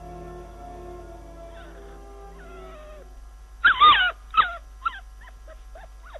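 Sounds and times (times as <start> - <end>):
small dog whimpering and yipping: 3.7 - 6.1.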